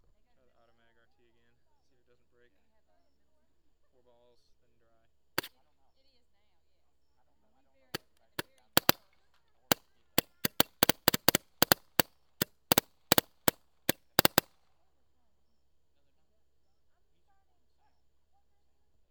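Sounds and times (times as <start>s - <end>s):
AutoMag guns firing: 8.4s - 9.0s, 10.2s - 14.6s.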